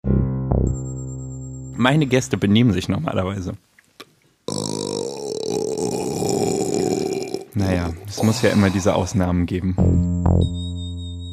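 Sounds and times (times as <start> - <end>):
speech: 1.8 - 3.7, 7.6 - 10.7
loud burp into the microphone: 4.5 - 9.0.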